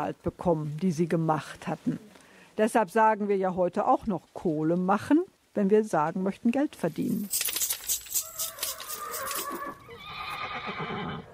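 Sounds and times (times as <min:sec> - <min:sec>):
speech: 0:00.0 - 0:07.5
replica horse neighing: 0:08.2 - 0:11.3.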